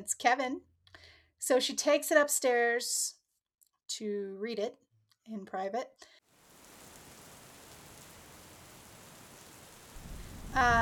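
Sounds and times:
speech: 0:00.0 - 0:03.2, 0:03.9 - 0:06.2, 0:10.5 - 0:10.7
heavy rain: 0:06.3 - 0:10.7
deep loud rumble of thunder: 0:06.5 - 0:10.7.

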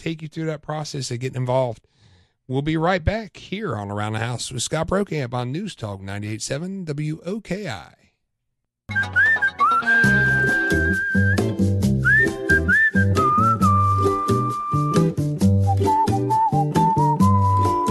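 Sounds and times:
speech: 0:00.0 - 0:08.0, 0:08.9 - 0:10.1
calm soothing whistled melody: 0:08.9 - 0:17.8
instrumental backing of bass and rhythmic accompaniment: 0:08.9 - 0:17.8.

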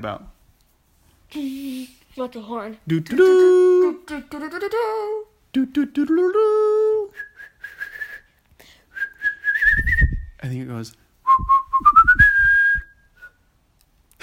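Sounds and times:
speech: 0:00.0 - 0:00.4, 0:01.3 - 0:07.3, 0:10.4 - 0:12.0
person whistling a tune: 0:07.1 - 0:08.3, 0:08.9 - 0:10.3, 0:11.3 - 0:13.4.

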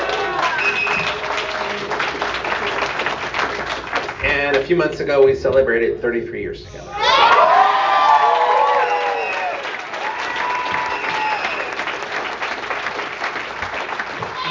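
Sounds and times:
audience whoops and cheers: 0:00.0 - 0:01.9, 0:06.9 - 0:11.9, 0:14.2 - 0:14.4
audience applause: 0:00.0 - 0:04.2, 0:07.2 - 0:14.4
speech: 0:04.7 - 0:07.1.

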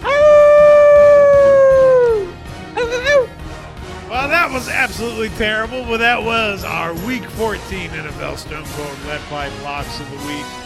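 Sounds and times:
person imitating a wolf howl: 0:00.0 - 0:03.3
speech: 0:05.0 - 0:10.6.

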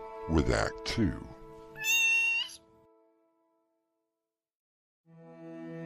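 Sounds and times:
speech: 0:00.3 - 0:01.4
cat meowing and yowling: 0:01.8 - 0:02.6.

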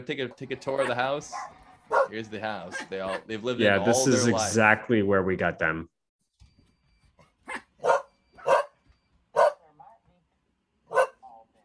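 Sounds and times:
speech: 0:00.0 - 0:05.9
dog barking: 0:00.8 - 0:03.3, 0:07.4 - 0:09.6, 0:10.9 - 0:11.5.

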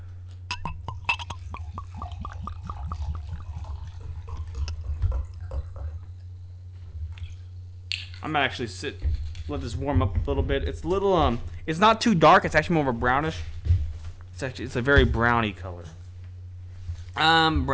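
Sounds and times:
low steady hum: 0:00.0 - 0:17.7
drink poured into a glass: 0:00.5 - 0:06.1
speech: 0:08.2 - 0:13.5, 0:14.4 - 0:16.0, 0:17.2 - 0:17.7.

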